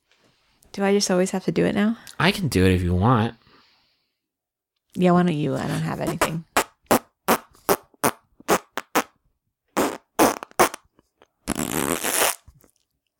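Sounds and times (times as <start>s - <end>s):
speech: 0.8s - 3.4s, 5.0s - 6.5s
fart noises: 6.0s - 9.2s, 9.8s - 12.5s.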